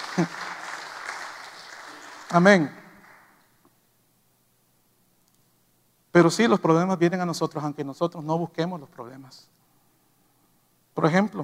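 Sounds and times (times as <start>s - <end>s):
audience applauding: 0.0s - 3.4s
speech: 0.2s - 0.4s, 2.3s - 2.8s, 6.2s - 9.6s, 11.0s - 11.4s.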